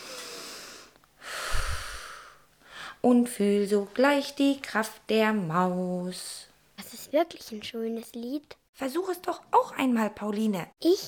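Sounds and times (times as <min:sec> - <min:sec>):
deep forceful exhale with a low rumble: 0:00.0 - 0:03.0
speech: 0:03.0 - 0:11.0.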